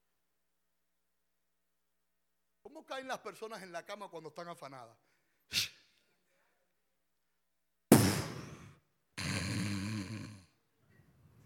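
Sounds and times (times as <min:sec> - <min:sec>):
speech: 0:02.7 - 0:05.7
person imitating snoring: 0:08.5 - 0:10.6.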